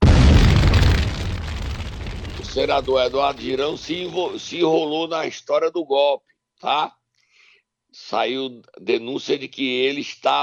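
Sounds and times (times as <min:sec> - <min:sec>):
fireball explosion sound effect: 0:00.0 - 0:04.3
speech: 0:02.6 - 0:07.0, 0:07.9 - 0:10.4.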